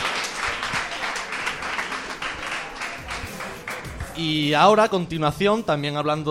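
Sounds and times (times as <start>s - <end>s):
sustained audience applause: 0.0s - 4.2s
speech: 4.2s - 6.3s.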